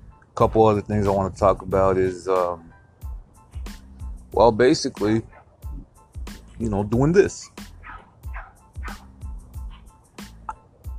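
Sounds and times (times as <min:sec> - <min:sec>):
speech: 0:00.4 - 0:02.7, 0:04.4 - 0:05.3, 0:06.6 - 0:07.6
dogs barking: 0:05.2 - 0:05.6, 0:07.4 - 0:10.0.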